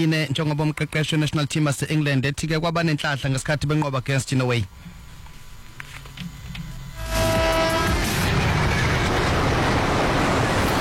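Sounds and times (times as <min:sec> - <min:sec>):
speech: 0:00.0 - 0:05.0
train roaring past: 0:06.9 - 0:10.7
short horn-like tone of a train: 0:07.0 - 0:09.4.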